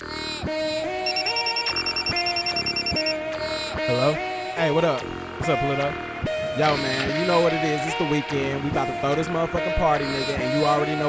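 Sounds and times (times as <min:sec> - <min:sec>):
phone ringing tone on an outgoing call: 0:01.0 - 0:03.2
speech: 0:03.9 - 0:11.0.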